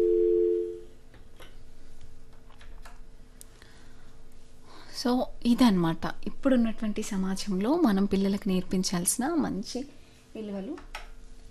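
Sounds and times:
telephone tone after a caller's line is cut off: 0.0 - 0.8
speech: 5.0 - 11.0.

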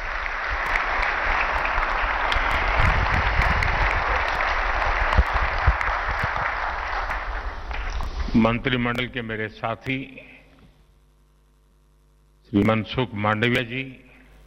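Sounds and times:
audience applause at a public address by a government leader: 0.0 - 8.4
speech: 8.4 - 10.3, 12.5 - 14.0.

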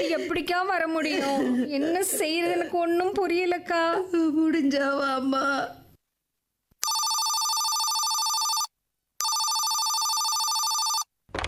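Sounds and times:
speech: 0.0 - 5.8
telephone ringing with an incoming call: 6.8 - 11.1.

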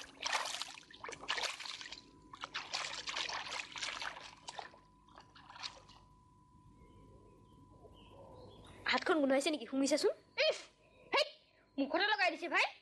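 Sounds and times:
running water splashing as hands are washed after fishing: 0.0 - 6.0
faint steady hum: 0.0 - 12.8
speech: 9.1 - 10.2, 11.8 - 12.8.

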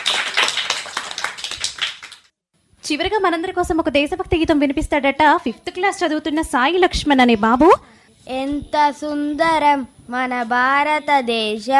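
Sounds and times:
audience clapping for a child's recitation at a school performance: 0.0 - 2.3
speech: 2.9 - 11.7.

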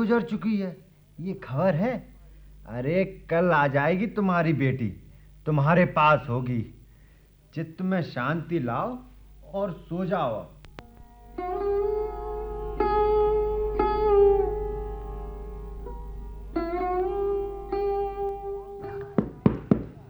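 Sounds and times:
speech: 0.0 - 6.8, 7.5 - 10.6
sustained droning melodic music: 10.8 - 19.2
sharp loud knocks on a door at night: 19.2 - 20.0.

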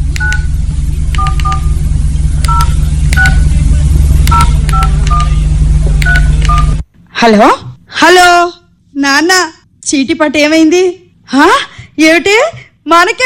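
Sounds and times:
steady low hum: 0.0 - 13.2
touch-tone telephone keypad beeps as a number is dialed: 0.2 - 0.5, 1.2 - 1.7, 2.5 - 3.4, 4.3 - 5.4, 6.0 - 6.8
speech: 7.2 - 13.2.

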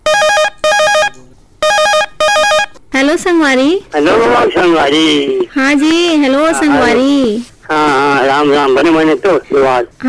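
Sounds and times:
telephone ringing for an incoming call: 0.0 - 2.8
speech: 3.1 - 10.0.

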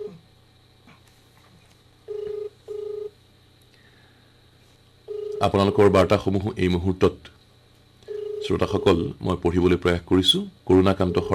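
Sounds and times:
mobile phone call connecting tone pulses: 0.0 - 0.2, 2.1 - 3.1, 5.1 - 6.1, 8.1 - 9.1, 10.3 - 11.3
faint constant hum: 0.0 - 11.3
speech: 5.4 - 7.4, 8.5 - 11.3.

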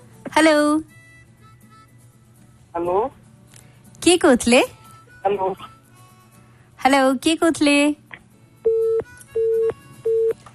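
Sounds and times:
speech: 0.3 - 0.9, 2.8 - 3.2, 4.0 - 5.7, 6.8 - 8.0
telephone busy signal on a failed call: 8.7 - 10.4.

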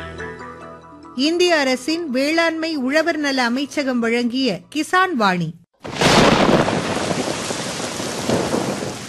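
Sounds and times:
speech: 1.2 - 6.3
steady heavy rain damaging crops: 5.8 - 9.0.

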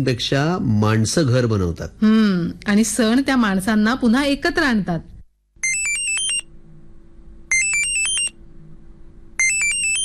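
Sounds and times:
speech: 0.0 - 5.1
phone ringtone of an incoming video call: 5.6 - 6.5, 7.5 - 8.4, 9.4 - 10.0.

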